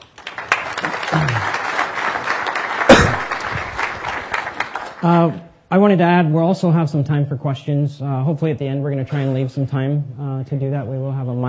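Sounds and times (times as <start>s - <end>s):
audience applause: 0.0s - 5.2s
speech: 5.0s - 11.4s.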